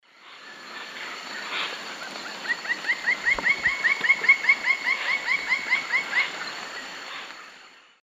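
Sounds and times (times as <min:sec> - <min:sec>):
Dryocopus lineatus calling in the Eastern Lowlands of South America: 0:00.2 - 0:07.4.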